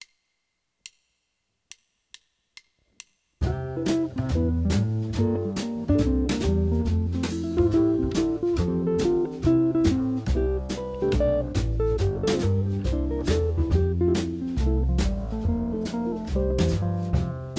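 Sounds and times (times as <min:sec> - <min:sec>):
Cmaj7 Fmaj7 chord backing track: 0:03.5 - 0:17.4.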